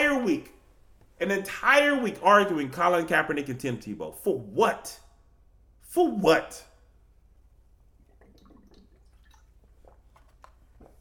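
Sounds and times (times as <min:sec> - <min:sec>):
speech: 0:00.3 - 0:00.6, 0:01.2 - 0:05.0, 0:05.9 - 0:06.7
person sipping water into the mic: 0:07.8 - 0:10.9
soft wet slurps and gulps: 0:07.8 - 0:10.9.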